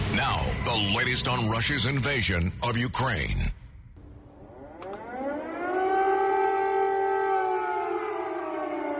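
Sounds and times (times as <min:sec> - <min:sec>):
speech: 0:00.2 - 0:03.6
air raid siren wailing: 0:04.0 - 0:08.9.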